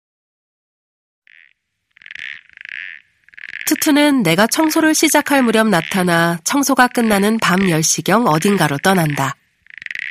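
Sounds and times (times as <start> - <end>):
toad croaking: 1.2 - 10.1
speech: 3.7 - 9.4.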